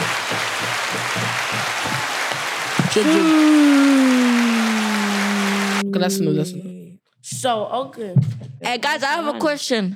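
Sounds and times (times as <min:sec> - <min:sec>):
small group of people clapping: 0:00.0 - 0:05.9
person cheering over applause: 0:02.8 - 0:06.2
speech: 0:03.0 - 0:04.7, 0:05.9 - 0:09.9.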